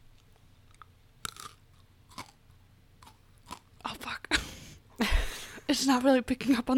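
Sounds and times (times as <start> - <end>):
chewing a crunchy packaged snack: 0.2 - 4.1
speech: 5.8 - 6.7.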